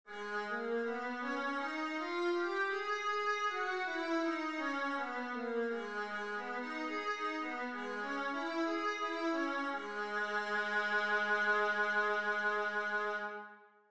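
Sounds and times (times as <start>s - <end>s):
viola playing scales in G sharp minor: 0.2s - 13.6s.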